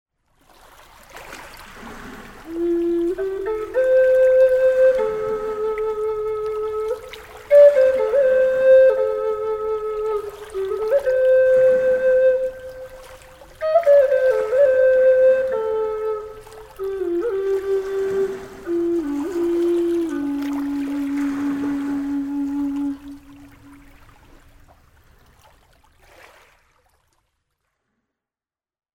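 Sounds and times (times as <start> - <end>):
bamboo flute: 2.4 - 24.4.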